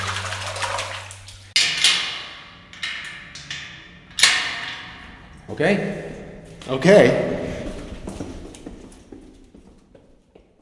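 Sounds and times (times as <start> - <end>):
water sloshing and splashing in a bowl in a prison cell: 0.0 - 1.7
low hum: 0.0 - 8.5
speech: 5.5 - 6.1, 6.7 - 7.4.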